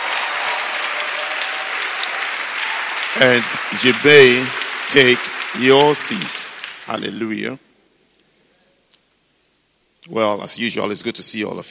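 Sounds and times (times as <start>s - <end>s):
congregation applauding: 0.0s - 7.5s
speech: 3.1s - 7.6s, 10.1s - 11.6s.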